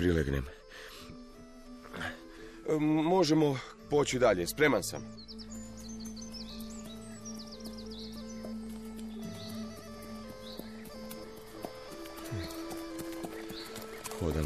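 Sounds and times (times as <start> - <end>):
speech: 0.0 - 0.9, 2.7 - 5.3, 14.2 - 14.4
birds chirping and twittering: 0.0 - 14.4
horse walking with clopping hoofbeats: 8.2 - 14.4.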